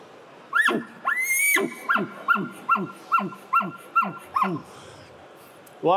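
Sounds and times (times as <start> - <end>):
elk barking: 0.6 - 4.7.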